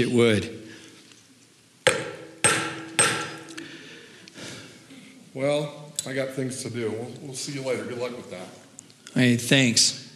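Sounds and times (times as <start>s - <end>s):
speech: 0.0s - 0.6s, 5.4s - 8.6s, 9.2s - 10.0s
hammer blows with a broken-handled hammer: 1.9s - 3.6s.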